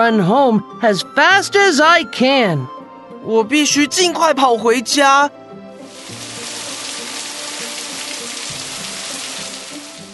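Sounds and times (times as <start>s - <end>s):
speech: 0.0s - 5.4s
heavy rain pouring down: 5.8s - 10.1s.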